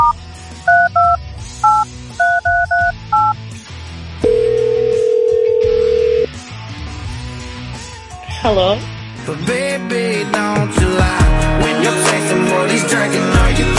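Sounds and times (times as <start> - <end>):
telephone keypad dialing tones: 0.7 - 3.4, 4.2 - 6.3
speech: 8.4 - 13.7.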